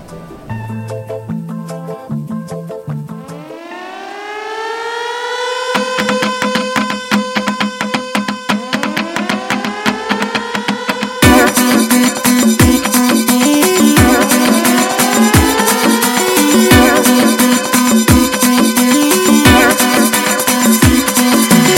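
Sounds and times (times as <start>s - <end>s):
short synth melody: 0.0s - 21.7s
siren tones in an electronic music track: 3.1s - 21.7s
steady pulsing beat: 6.0s - 21.7s.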